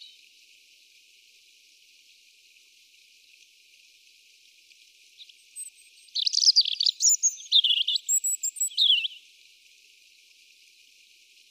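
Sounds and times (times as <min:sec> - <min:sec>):
European robin Erithacus rubecula song: 0:05.2 - 0:09.3.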